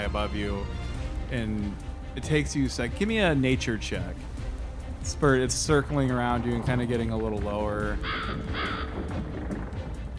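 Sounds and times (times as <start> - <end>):
low rumble: 0.0 - 10.1
speech: 0.1 - 4.3, 5.0 - 9.4
crow cawing: 7.9 - 9.4.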